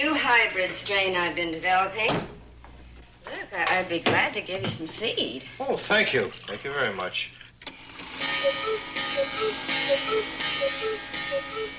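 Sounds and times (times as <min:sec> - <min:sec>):
speech: 0:00.0 - 0:02.4, 0:03.3 - 0:07.4, 0:08.4 - 0:11.7
clock striking six o'clock: 0:07.9 - 0:11.7.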